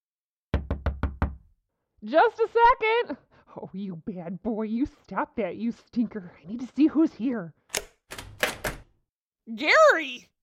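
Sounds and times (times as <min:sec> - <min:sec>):
firm knocks on a door: 0:00.5 - 0:01.5
speech: 0:02.0 - 0:07.6, 0:09.5 - 0:10.3.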